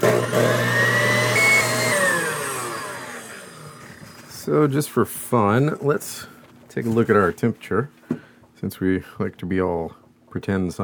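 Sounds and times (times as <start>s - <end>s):
electric mixer whirring as it beats a mixture: 0.0s - 4.3s
speech: 4.5s - 10.8s.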